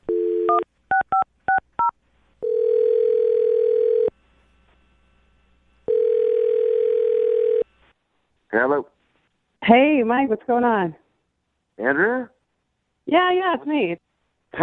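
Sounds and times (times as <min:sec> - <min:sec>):
telephone ringing tone: 0:00.1 - 0:01.2, 0:02.4 - 0:04.1, 0:05.9 - 0:07.7
speech: 0:09.7 - 0:11.0, 0:11.8 - 0:12.4, 0:13.1 - 0:14.0.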